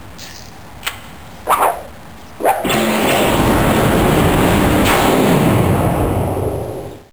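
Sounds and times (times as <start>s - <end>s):
weapons firing: 1.5s - 5.9s.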